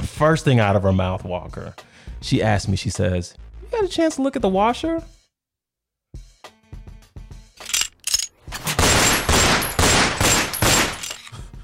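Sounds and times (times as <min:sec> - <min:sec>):
speech: 0:00.2 - 0:05.2
sustained barrage of rapid gunfire: 0:08.6 - 0:11.1
gunshot sound effect: 0:08.6 - 0:11.3.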